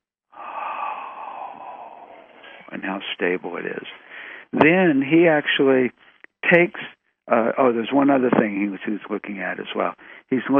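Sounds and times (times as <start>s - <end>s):
voice imitating breathing with a long breathy exhale: 0.4s - 2.7s
speech: 2.7s - 10.5s.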